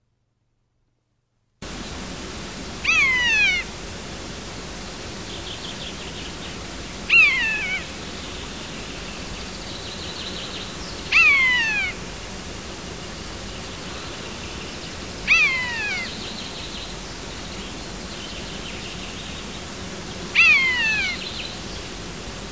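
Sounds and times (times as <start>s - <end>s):
background hiss: 1.6s - 22.4s
common buzzard calling: 2.8s - 3.8s, 7.0s - 8.0s, 11.0s - 12.1s, 15.2s - 16.3s, 20.3s - 21.6s.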